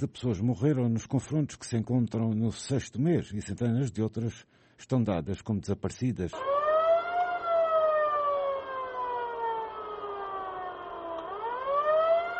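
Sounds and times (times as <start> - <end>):
speech: 0.0 - 6.6
ambulance siren wailing arriving at the Military Hospital of Yaoundé: 6.3 - 12.3.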